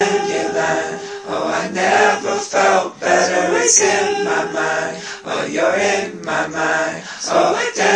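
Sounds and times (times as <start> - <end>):
folksy vocal harmony: 0.0 - 7.9.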